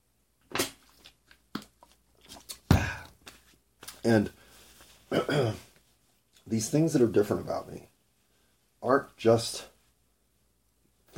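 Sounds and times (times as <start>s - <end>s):
person sipping water: 0.8s - 3.1s
speech: 4.0s - 4.4s, 5.1s - 5.7s, 6.5s - 7.9s, 8.8s - 9.7s.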